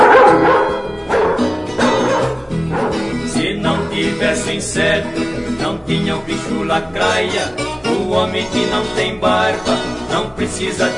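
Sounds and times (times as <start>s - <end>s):
dog barking and yipping: 0.0s - 3.2s
speech: 4.5s - 10.9s.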